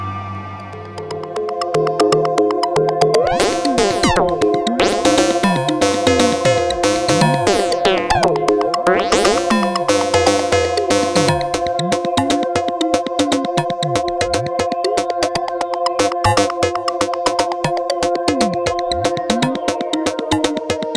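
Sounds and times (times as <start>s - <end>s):
Pro 1 synthesizer: 0.7s - 20.9s.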